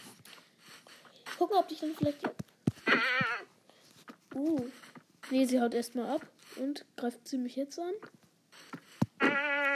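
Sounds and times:
speech: 0:01.4 - 0:03.1, 0:04.4 - 0:08.2
video game goat bleating: 0:02.8 - 0:03.6, 0:08.6 - 0:09.7.

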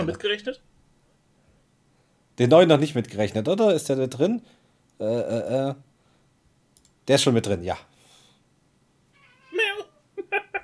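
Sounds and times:
speech: 0:00.0 - 0:00.7, 0:02.4 - 0:05.9, 0:07.1 - 0:07.9
cat meowing in a complaining way: 0:09.1 - 0:10.0
laughter: 0:09.6 - 0:10.6.

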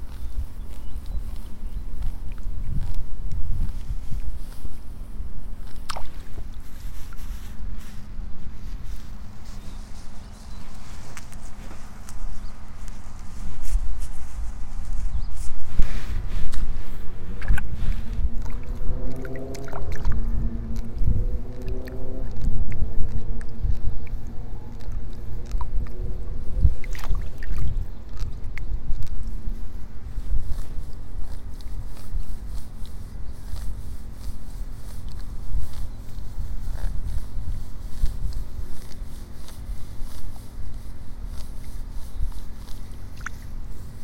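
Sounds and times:
steady low outdoor rumble: 0:00.0 - 0:44.0
small splashes from pulling seedlings in a flooded rice nursery: 0:05.8 - 0:06.5, 0:18.4 - 0:20.2, 0:26.8 - 0:28.4
engine rising in pitch: 0:17.1 - 0:23.5.

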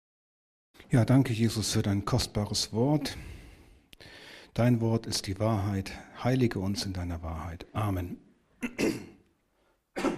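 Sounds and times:
speech: 0:00.9 - 0:03.4, 0:04.0 - 0:09.1
person coughing harshly: 0:08.6 - 0:09.2, 0:10.0 - 0:10.1.

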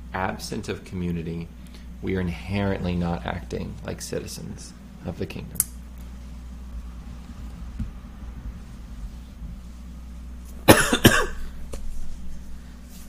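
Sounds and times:
steady low hum: 0:00.0 - 0:13.0
speech: 0:00.1 - 0:05.7
person coughing: 0:10.7 - 0:11.5.

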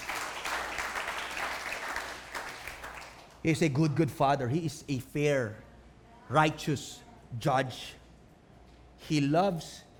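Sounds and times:
church congregation applauding during a sermon: 0:00.0 - 0:03.6
speech: 0:03.4 - 0:05.7, 0:06.3 - 0:08.0, 0:09.0 - 0:09.9.

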